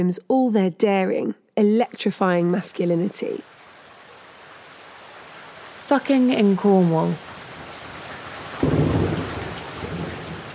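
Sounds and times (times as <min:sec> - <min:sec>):
speech: 0:00.0 - 0:03.5, 0:05.9 - 0:07.3
steady dense heavy rain: 0:03.4 - 0:10.5
deep roll of thunder rumbling: 0:08.5 - 0:10.5.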